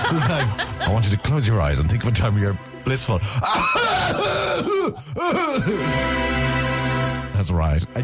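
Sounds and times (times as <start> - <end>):
laughter: 0.0 - 1.4
speech: 0.1 - 6.4, 7.4 - 8.0
person imitating a coughing fit: 3.5 - 5.9.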